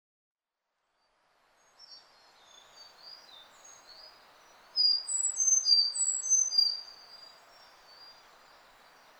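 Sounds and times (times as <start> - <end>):
Sakhalin leaf warbler song: 1.8 - 9.1.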